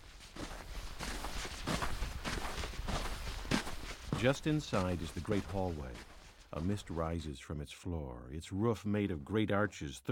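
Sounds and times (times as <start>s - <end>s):
footsteps crunching inside an ice hotel: 0.0s - 7.2s
speech: 4.2s - 10.1s.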